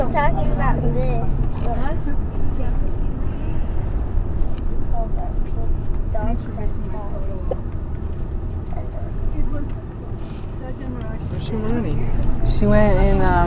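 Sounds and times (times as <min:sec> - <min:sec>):
several people chatting inside a moving vehicle: 0:00.0 - 0:03.5, 0:04.9 - 0:07.6, 0:10.6 - 0:13.4
moving vehicle interior rumble with engine and road noise: 0:00.0 - 0:13.4.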